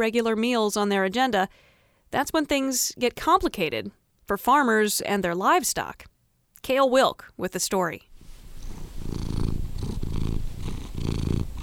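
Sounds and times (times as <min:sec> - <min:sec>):
speech: 0:00.0 - 0:08.1
female cat purring: 0:08.2 - 0:11.6.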